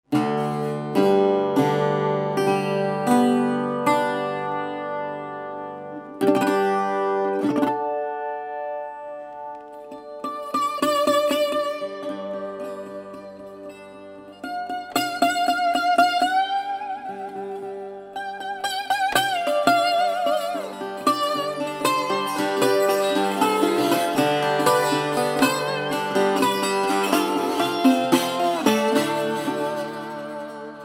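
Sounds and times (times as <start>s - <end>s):
12-string Delta resonator guitar playing: 0.1s - 30.8s.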